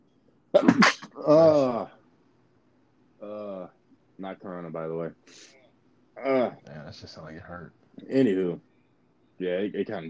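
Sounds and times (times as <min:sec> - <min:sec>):
speech: 0:00.5 - 0:01.9, 0:04.3 - 0:05.6, 0:06.2 - 0:08.7, 0:09.4 - 0:10.0
person sneezing: 0:00.6 - 0:01.8
pained vocal groan: 0:01.2 - 0:01.9, 0:03.2 - 0:03.7, 0:06.2 - 0:07.1.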